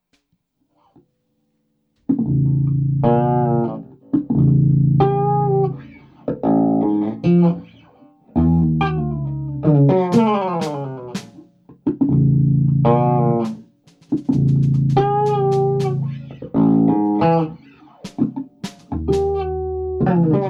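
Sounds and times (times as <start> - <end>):
bass guitar solo: 2.1 - 7.8, 8.4 - 11.2, 11.8 - 13.6, 14.4 - 20.4.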